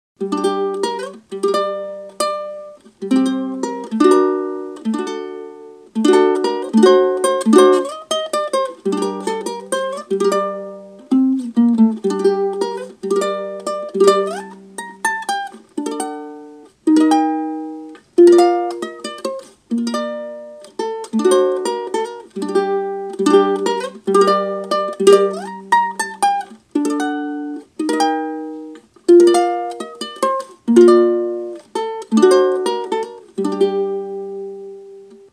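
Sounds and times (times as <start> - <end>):
bandurka ukulele playing: 0.2 - 35.3.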